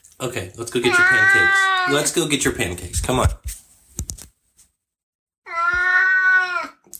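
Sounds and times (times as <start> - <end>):
speech: 0.2 - 3.4
cat meowing: 0.8 - 2.1, 5.5 - 6.8.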